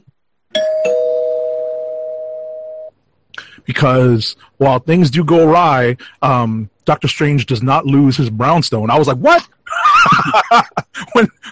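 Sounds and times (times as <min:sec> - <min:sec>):
bell chime: 0:00.6 - 0:02.9
speech: 0:03.7 - 0:11.4
laughter: 0:09.7 - 0:11.4.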